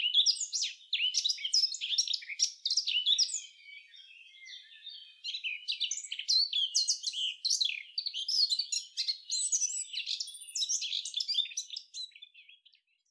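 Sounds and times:
Eurasian blackcap singing a rich warble: 0.0s - 13.1s.

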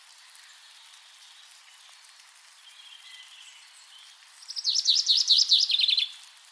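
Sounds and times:
common chaffinch Fringilla coelebs song phrase: 4.4s - 6.2s.

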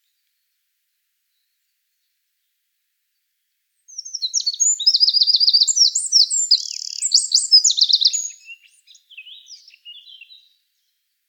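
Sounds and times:
Eurasian wren Troglodytes troglodytes delivering a shrill fast song of rattling trills: 3.9s - 10.6s.

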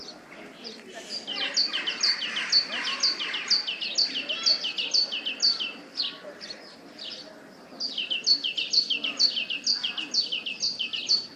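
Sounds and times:
great tit Parus major singing a two-note phrase: 0.0s - 11.3s.

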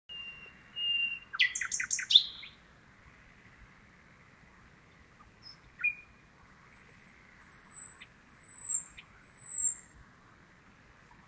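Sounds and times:
common nightingale singing: 0.1s - 2.7s, 4.8s - 10.0s.

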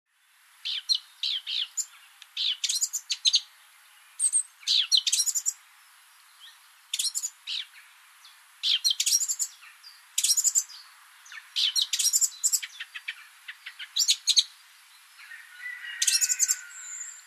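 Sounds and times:
Eurasian blackcap Sylvia atricapilla twittering: 0.6s - 3.5s, 4.2s - 5.6s, 6.4s - 7.8s, 8.6s - 14.5s, 15.9s - 17.2s.

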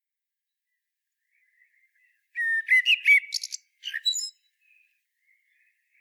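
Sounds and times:
common blackbird Turdus merula singing: 1.3s - 5.9s.

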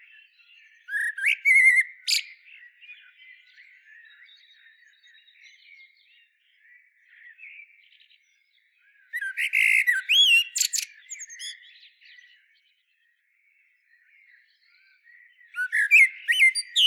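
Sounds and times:
Turdus merula common blackbird calling: 0.9s - 2.4s, 9.2s - 11.7s, 15.6s - 16.8s.

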